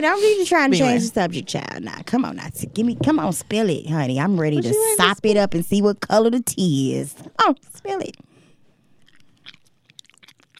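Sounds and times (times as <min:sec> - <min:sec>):
speech: 0:00.0 - 0:08.2
quiet noise: 0:00.0 - 0:10.4
wet gum-chewing smacks with sharp pops: 0:08.9 - 0:10.5.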